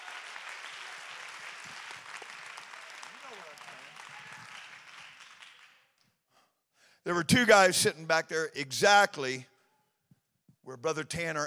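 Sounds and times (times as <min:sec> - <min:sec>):
audience applause: 0:00.0 - 0:05.8
speech: 0:07.1 - 0:09.5, 0:10.7 - 0:11.4.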